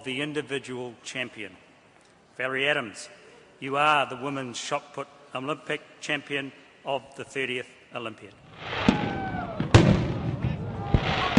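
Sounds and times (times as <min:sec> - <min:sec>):
speech: 0:00.0 - 0:01.7, 0:02.4 - 0:08.7
fireworks bursting outdoors in the night sky: 0:08.4 - 0:11.3.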